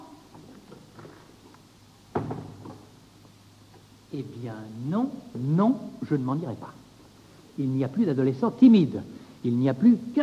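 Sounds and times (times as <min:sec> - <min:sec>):
door beside a gas lamp clunking and rattling as it opens: 0:02.1 - 0:02.9
speech: 0:04.2 - 0:06.8, 0:07.6 - 0:10.1.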